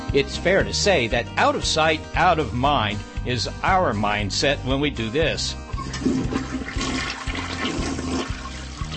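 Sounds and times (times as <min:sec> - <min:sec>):
speech: 0:00.1 - 0:06.4
toilet flushing with rushing whoosh of water: 0:05.7 - 0:08.9.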